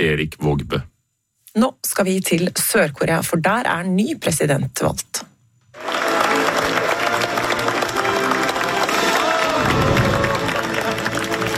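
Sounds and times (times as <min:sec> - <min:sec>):
speech: 0:00.0 - 0:00.9, 0:01.6 - 0:05.3
large crowd applauding in a standing ovation in a national assembly: 0:05.7 - 0:11.5
scattered cheers and voices: 0:05.8 - 0:11.5.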